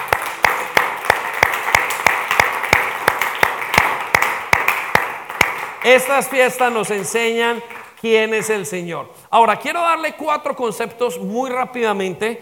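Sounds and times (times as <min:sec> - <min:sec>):
crowd clapping: 0:00.0 - 0:08.6
speech: 0:05.8 - 0:12.4.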